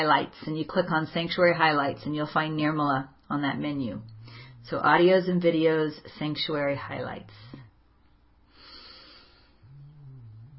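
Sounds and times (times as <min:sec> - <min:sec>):
speech: 0:00.0 - 0:07.5
female pet snoring while napping: 0:03.6 - 0:05.4, 0:09.3 - 0:10.5.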